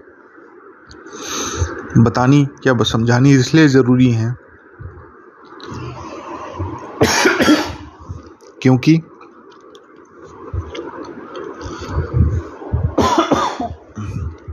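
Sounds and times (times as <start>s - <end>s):
speech: 2.0s - 4.4s, 8.6s - 9.1s
man coughing: 7.0s - 7.9s, 13.0s - 14.2s.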